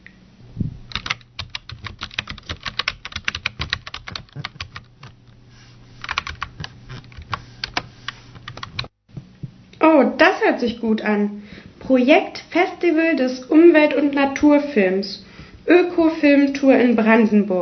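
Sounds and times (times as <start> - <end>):
typing on a computer keyboard: 0.9 - 5.2, 6.0 - 8.9
speech: 10.2 - 17.6.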